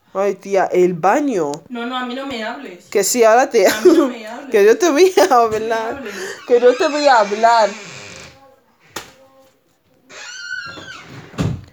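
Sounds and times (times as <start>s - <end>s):
speech: 0.1s - 7.9s
door shutting with a heavier thud: 10.1s - 11.7s.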